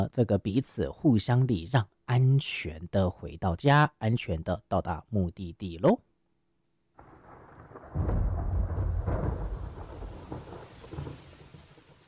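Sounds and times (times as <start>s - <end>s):
speech: 0.0s - 6.1s
steady rain: 7.0s - 12.0s
thunder rumbling: 7.0s - 12.0s.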